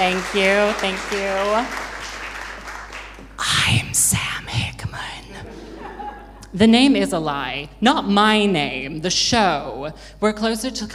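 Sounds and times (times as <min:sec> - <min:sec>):
speech: 0:00.0 - 0:01.9, 0:03.7 - 0:04.7, 0:06.5 - 0:10.9
crowd applauding: 0:00.0 - 0:03.4
laughter: 0:05.4 - 0:06.4.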